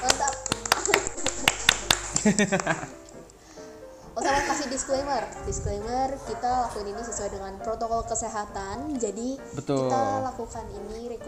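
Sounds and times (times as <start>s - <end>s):
hand clapping for a high school student council: 0.0s - 3.0s
laughter: 0.7s - 3.0s, 4.2s - 5.4s
speech: 2.2s - 3.0s, 4.2s - 11.2s
faint voices murmuring: 4.2s - 11.2s.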